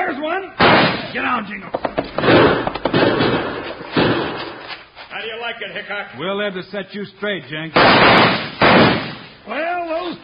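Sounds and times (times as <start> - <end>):
speech: 0.3 - 3.3, 5.2 - 10.2
sharp gunshots in a shootout: 0.6 - 1.4, 2.0 - 4.7, 7.8 - 9.4.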